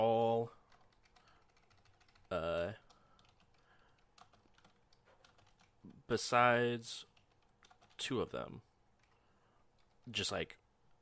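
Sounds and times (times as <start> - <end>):
typing on a computer keyboard: 0.6 - 5.8, 7.1 - 8.1, 9.0 - 9.2, 9.8 - 10.1
speech: 6.1 - 7.1, 8.0 - 8.7, 10.1 - 10.6.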